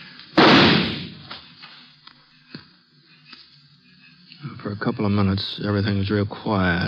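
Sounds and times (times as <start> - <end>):
single loud gunshot echoing in a canyon: 0.4 - 1.3
speech: 4.6 - 6.8.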